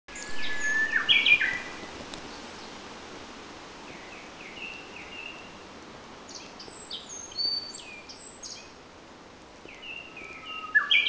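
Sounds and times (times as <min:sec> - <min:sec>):
common nightingale singing: 0:00.1 - 0:02.8, 0:03.9 - 0:05.7, 0:06.3 - 0:08.8, 0:09.7 - 0:11.0
constant soft hiss: 0:00.1 - 0:11.0.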